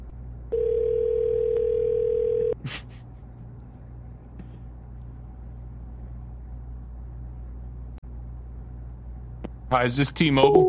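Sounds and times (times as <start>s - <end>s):
quiet hum: 0.0s - 10.6s
telephone ringback tone on an outgoing call: 0.5s - 2.6s
speech: 9.7s - 10.6s.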